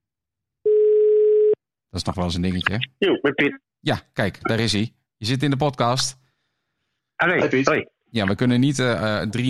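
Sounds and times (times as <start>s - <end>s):
electronic telephone ringing tone: 0.7s - 1.6s
speech: 2.0s - 6.2s, 7.2s - 9.4s.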